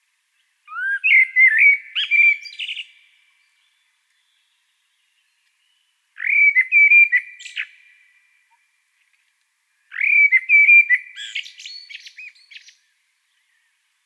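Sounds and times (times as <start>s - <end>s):
common blackbird Turdus merula singing: 0.7s - 7.9s, 9.9s - 13.5s.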